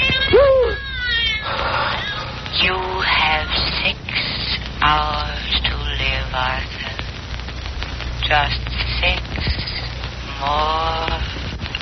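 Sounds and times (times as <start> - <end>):
cat meowing over a telephone line: 0.0 - 2.4
faint telephone line noise: 0.0 - 11.7.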